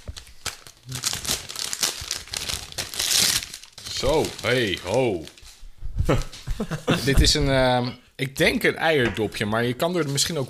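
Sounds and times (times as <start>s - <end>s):
wrapping paper crinkling as gifts are unwrapped: 0.0s - 5.6s
speech: 4.0s - 5.4s, 6.1s - 10.4s
laughter: 6.1s - 7.5s.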